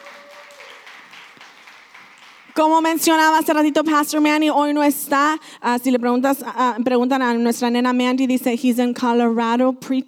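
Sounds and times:
crowd applauding in a large room: 0.0s - 3.3s
speech: 2.6s - 10.0s.

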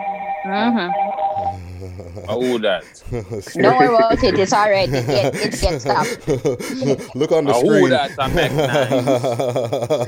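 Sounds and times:
phone ringtone melody: 0.0s - 1.5s
speech: 0.0s - 10.0s
laughter: 1.8s - 10.0s.

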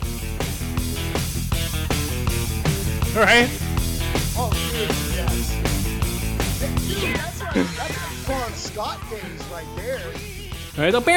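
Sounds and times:
full band backing: 0.5s - 9.4s
rock guitar riff: 2.8s - 4.3s
speech: 3.2s - 3.6s, 7.5s - 11.1s
laughter: 3.2s - 3.7s, 4.5s - 5.6s.

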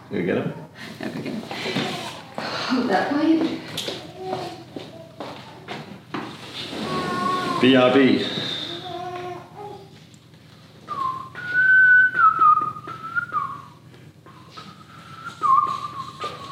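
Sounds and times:
low hum: 0.0s - 16.5s
speech: 0.1s - 4.6s, 7.6s - 8.4s
person whistling a wavering sustained tune: 10.9s - 16.5s.

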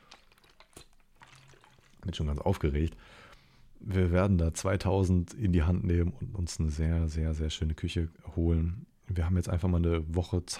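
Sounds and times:
person sipping water: 0.0s - 2.0s
slurping and swallowing: 0.0s - 2.0s
speech: 2.1s - 10.5s.

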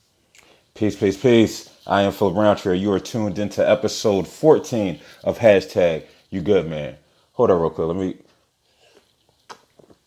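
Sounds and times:
person sipping diet Mountain Dew soda: 0.3s - 0.8s, 8.6s - 10.0s
speech: 0.8s - 8.3s.

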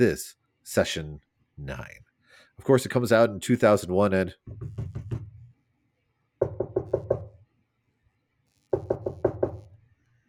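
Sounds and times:
speech: 0.0s - 2.0s, 2.6s - 4.9s
sharp hollow knocking on a door: 4.4s - 5.4s, 6.4s - 7.4s, 8.8s - 9.7s.

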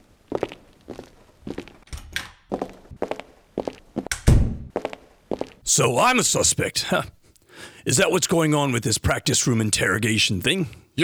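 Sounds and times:
footsteps of three people walking into a practice room: 0.3s - 5.6s
speech: 5.7s - 7.2s, 7.9s - 11.0s.

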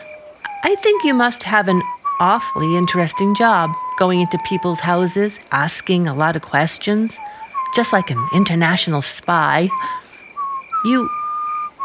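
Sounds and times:
person whistling a tune: 0.0s - 5.2s, 7.2s - 8.8s, 9.6s - 11.8s
speech: 0.6s - 10.0s, 10.8s - 11.2s.

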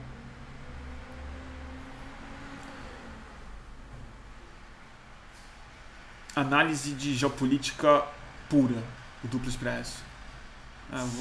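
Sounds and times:
garbage truck driving past: 0.0s - 6.2s
speech: 6.4s - 10.1s, 10.9s - 11.1s.

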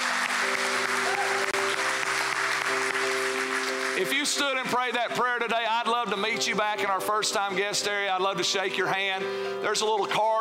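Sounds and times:
large crowd applause: 0.0s - 5.2s
speech: 4.0s - 10.3s.

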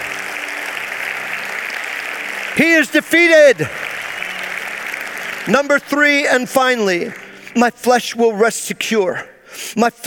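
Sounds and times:
crowd applauding: 0.0s - 7.7s
speech: 2.6s - 3.8s, 5.5s - 10.0s.

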